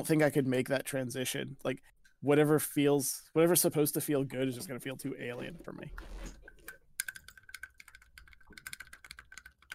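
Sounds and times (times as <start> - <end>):
speech: 0.0 - 6.4
mechanical keyboard keys clacking: 7.0 - 9.7.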